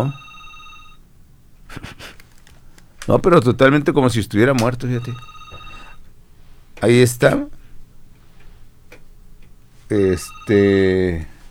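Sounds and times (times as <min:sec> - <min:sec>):
speech: 0:00.0 - 0:00.2, 0:01.8 - 0:02.0, 0:03.1 - 0:05.3, 0:06.8 - 0:07.6, 0:09.9 - 0:11.3
telephone dial tone: 0:00.0 - 0:01.0, 0:04.8 - 0:06.1, 0:09.9 - 0:11.4.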